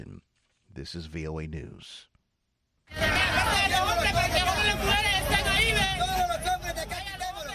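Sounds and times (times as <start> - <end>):
speech: 0.8 - 2.1, 2.9 - 6.6
faint low traffic rumble: 2.9 - 7.5
hubbub of a large outdoor crowd of migrants at a border: 2.9 - 7.5.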